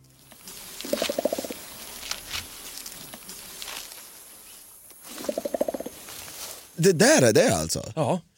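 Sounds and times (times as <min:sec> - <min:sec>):
outdoor hiss: 0:00.0 - 0:07.9
faint insect-like buzzing: 0:00.3 - 0:06.7
gorilla beating its chest: 0:00.8 - 0:01.6, 0:05.1 - 0:06.0
speech: 0:06.8 - 0:08.3.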